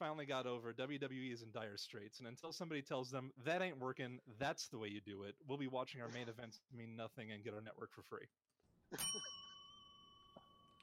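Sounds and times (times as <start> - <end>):
speech: 0.0 - 9.4
slightly off-key bell ding ringing: 9.0 - 10.8.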